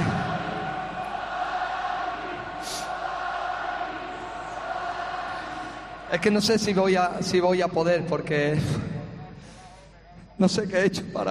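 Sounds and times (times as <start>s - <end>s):
huge stadium crowd applauding and cheering: 0.0s - 7.4s
speech: 6.1s - 8.9s, 10.4s - 11.2s.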